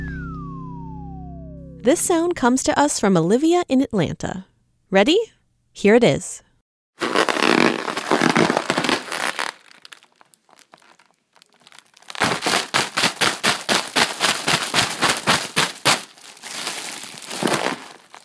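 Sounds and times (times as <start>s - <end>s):
speech: 1.8s - 6.5s
deflated Mylar balloon crinkling and crackling while handled: 7.0s - 18.2s.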